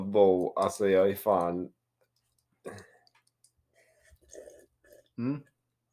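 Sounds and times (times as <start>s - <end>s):
speech: 0.1s - 1.8s, 2.6s - 2.9s, 5.2s - 5.5s
person gulping, slurping and swallowing a beverage: 2.6s - 5.9s.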